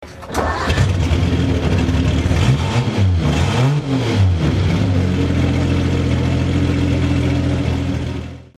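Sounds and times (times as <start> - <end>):
Alfa Romeo 6C oldtimer car engine: 0.0 - 8.5.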